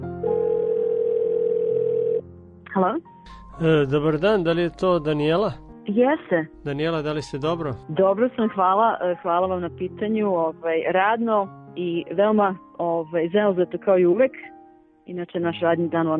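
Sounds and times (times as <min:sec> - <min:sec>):
telephone ringing tones while calling someone: 0:00.2 - 0:02.2
speech: 0:02.8 - 0:16.1.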